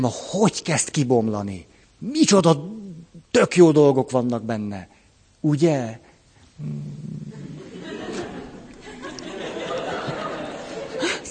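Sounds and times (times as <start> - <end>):
speech: 0.0 - 2.8, 3.4 - 7.3
person imitating a dog growling: 6.6 - 7.5
laughter: 7.3 - 11.2.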